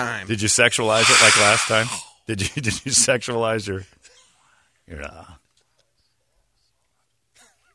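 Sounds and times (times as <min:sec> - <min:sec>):
speech: 0:00.0 - 0:04.0, 0:04.9 - 0:05.4
exaggerated heavy breathing made by a person on request: 0:00.8 - 0:02.3.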